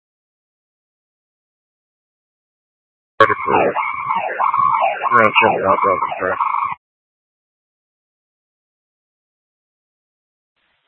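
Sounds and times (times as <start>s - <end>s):
speech: 3.2s - 4.5s, 5.1s - 6.5s
emergency vehicle siren with distorted radio-like quality: 3.2s - 6.8s.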